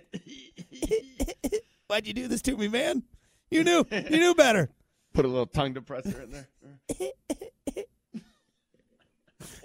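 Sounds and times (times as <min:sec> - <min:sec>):
voice imitating a cough: 0:00.0 - 0:01.7, 0:06.1 - 0:07.9
speech: 0:01.9 - 0:07.2.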